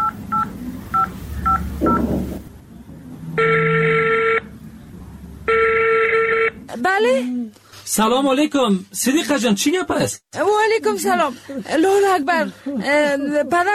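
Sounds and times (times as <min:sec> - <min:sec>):
mobile phone long buzzy ringing tones: 0:00.0 - 0:02.1, 0:03.4 - 0:04.5, 0:05.5 - 0:06.6
mobile phone keypad beeps: 0:00.0 - 0:02.2
speech: 0:06.9 - 0:13.7.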